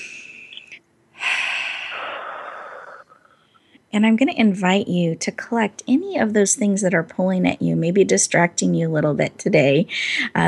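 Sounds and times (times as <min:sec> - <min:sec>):
deep breath during a guided relaxation exercise: 0:01.2 - 0:03.8
speech: 0:03.9 - 0:10.4.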